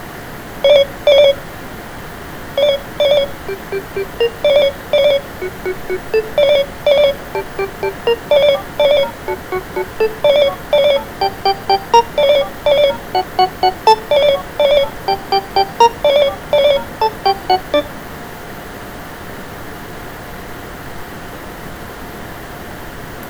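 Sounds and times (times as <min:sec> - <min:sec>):
Snom M3 phone ringtone: 0:00.6 - 0:01.5, 0:02.6 - 0:18.0.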